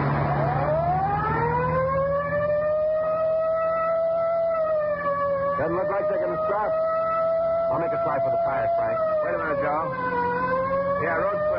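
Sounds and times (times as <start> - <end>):
police car siren wailing: 0.0 - 11.5
steady engine drone: 0.0 - 11.5
speech: 5.6 - 7.0, 7.7 - 11.5.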